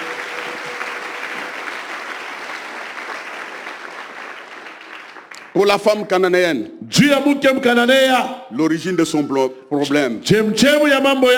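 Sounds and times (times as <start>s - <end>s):
congregation applauding during a church sermon: 0.0s - 5.7s
speech: 5.6s - 11.3s.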